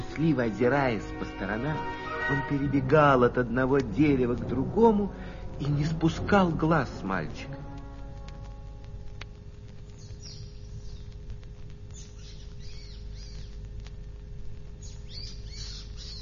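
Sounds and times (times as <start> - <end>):
steady low rumbling hum: 0.0 - 16.2
speech: 0.2 - 7.6
small bird chirping: 9.8 - 11.2, 11.9 - 13.7, 14.8 - 16.2.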